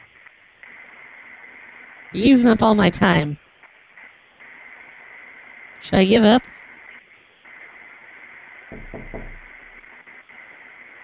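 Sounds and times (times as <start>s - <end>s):
steady hiss: 0.0s - 11.0s
speech: 2.1s - 3.4s, 5.9s - 6.6s
knocking on a door: 8.7s - 9.7s.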